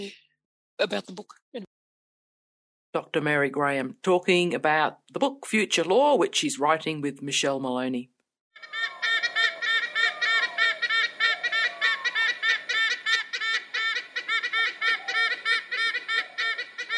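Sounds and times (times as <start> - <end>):
speech: 0.0 - 0.2, 0.8 - 1.8, 2.9 - 8.9
white-bellied sea eagle honking calls: 8.6 - 16.9.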